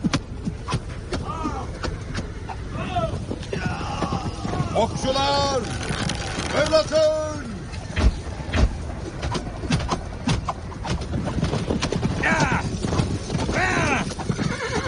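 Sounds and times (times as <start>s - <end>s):
dense clatter of cavalry horse hooves: 0.0s - 14.8s
cavalry horses whinnying in a battle: 2.6s - 6.6s, 12.0s - 14.8s
speech: 4.8s - 5.8s, 6.6s - 7.3s.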